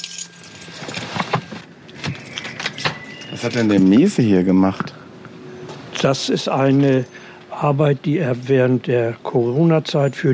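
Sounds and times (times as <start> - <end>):
keys jangling as one is picked up after parking a car: 0.0 - 4.3
faint car engine hum: 0.1 - 10.3
speech: 3.4 - 5.0, 6.0 - 10.3.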